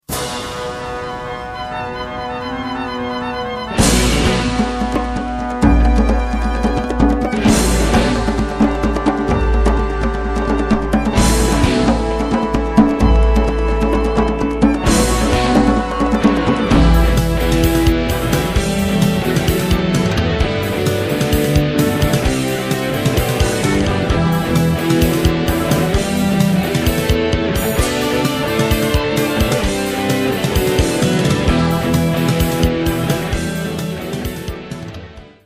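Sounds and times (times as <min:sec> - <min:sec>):
percussion: 0:00.0 - 0:35.4
synthesizer: 0:00.0 - 0:35.4
electric guitar: 0:00.1 - 0:35.4
bass: 0:02.4 - 0:35.4.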